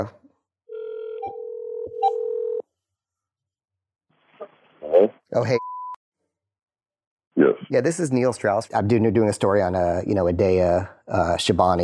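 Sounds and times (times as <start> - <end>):
speech: 0.0 - 0.2, 5.0 - 5.7, 7.4 - 11.8
telephone tone humming: 0.7 - 2.6.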